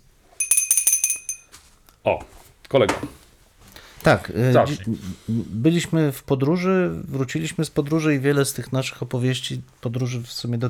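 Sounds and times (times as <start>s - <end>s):
small bright bell ringing: 0.4s - 1.6s
speech: 2.0s - 3.2s, 4.0s - 10.6s.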